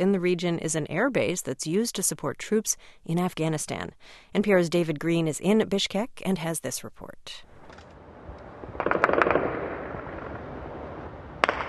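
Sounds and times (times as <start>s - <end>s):
speech: 0.0s - 7.8s
automatic weapon fire in a capital city at night: 8.7s - 10.5s, 11.4s - 11.6s
single loud gunshot: 8.8s - 10.4s, 11.4s - 11.6s.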